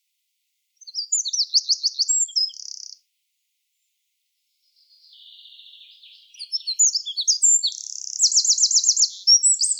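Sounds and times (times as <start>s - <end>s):
Eurasian wren Troglodytes troglodytes song: 0.8s - 3.0s, 4.6s - 9.7s.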